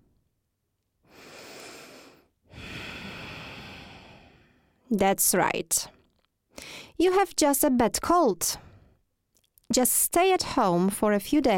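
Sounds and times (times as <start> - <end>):
deep slow breathing: 1.1 - 4.9, 6.6 - 7.0
speech: 4.9 - 6.0, 6.6 - 8.6, 9.7 - 11.5.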